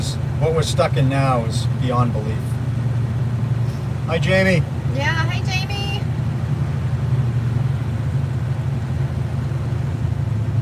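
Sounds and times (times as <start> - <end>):
car engine idling: 0.0 - 10.6
speech: 0.4 - 2.6, 4.1 - 5.8.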